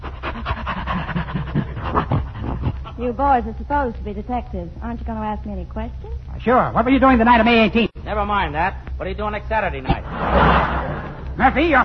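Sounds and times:
person panting after climbing a hill: 0.0 - 2.9
speech: 3.0 - 10.4, 11.4 - 11.8.

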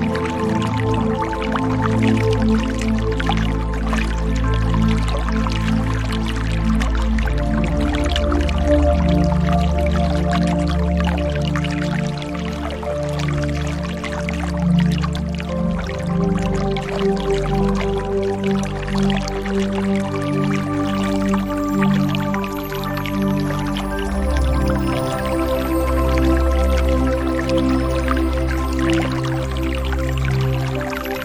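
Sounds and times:
small water drips and trickles: 0.0 - 31.2
soft slow relaxation music with sustained low tones and held chords: 0.0 - 31.2
faint bright sparkles: 20.5 - 31.2.

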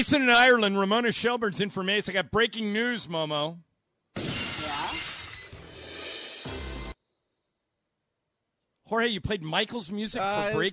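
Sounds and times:
speech: 0.0 - 3.7, 8.9 - 10.7
glass shattering: 4.2 - 5.9
glass shards spilling and tinkling: 4.4 - 5.6.

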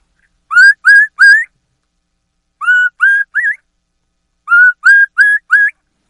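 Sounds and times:
turkey mouth call whistling high notes imitating a young turkey: 0.5 - 1.5, 2.6 - 3.6, 4.5 - 5.8.

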